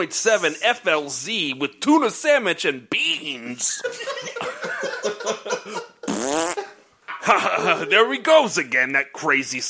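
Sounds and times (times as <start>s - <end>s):
speech: 0.0s - 5.6s, 7.3s - 9.6s
laughter: 3.7s - 8.2s
fart noises: 6.0s - 6.7s.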